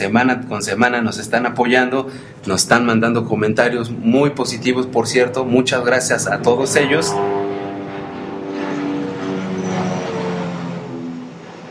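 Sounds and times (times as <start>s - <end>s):
speech: 0.0s - 7.4s
airplane passing overhead: 4.6s - 11.6s.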